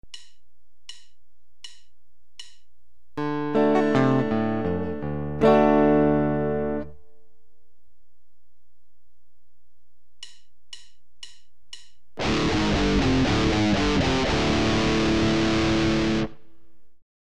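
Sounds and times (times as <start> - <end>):
guitar in drop-D tuning: 3.2 - 7.1, 12.2 - 16.5.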